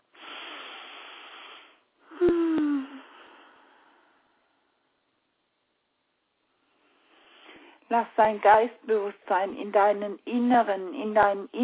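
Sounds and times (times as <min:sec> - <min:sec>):
deep breaths: 0:00.1 - 0:04.6, 0:06.7 - 0:07.9
speech: 0:07.9 - 0:11.6.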